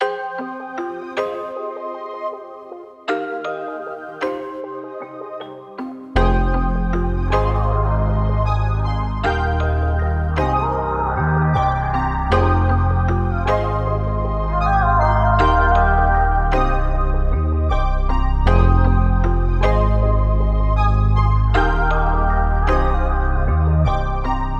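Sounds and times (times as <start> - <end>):
melodic music: 0.0 - 24.5.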